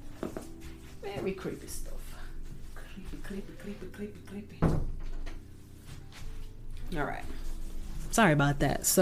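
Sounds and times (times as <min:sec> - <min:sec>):
soft shuffling: 0:00.0 - 0:04.3, 0:05.4 - 0:08.9
speech: 0:01.1 - 0:01.9, 0:03.0 - 0:04.9, 0:06.9 - 0:07.5, 0:08.1 - 0:08.9
door closing with a solid thud: 0:04.6 - 0:05.4.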